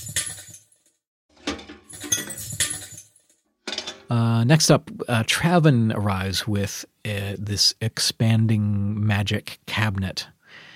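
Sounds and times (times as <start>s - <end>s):
glass impacts with hollow metallic trash can reverb: 1.4s - 4.1s
speech: 4.1s - 10.4s.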